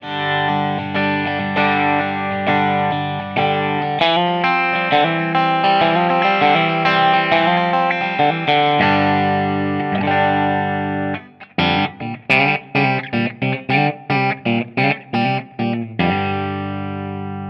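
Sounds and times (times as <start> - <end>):
clean Stratocaster electric guitar: 0.0 - 17.4.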